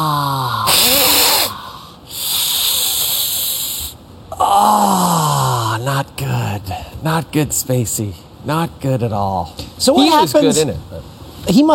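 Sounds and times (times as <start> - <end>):
person snarling and gasping: 0.0 - 3.6, 4.3 - 5.8
person imitating an angry cat with breathy hisses: 0.0 - 5.8
speech: 7.1 - 11.7.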